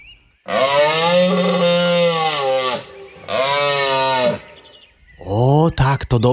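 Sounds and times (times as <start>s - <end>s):
moose calling with a moaning bellow: 0.5s - 4.8s
speech: 6.1s - 6.3s.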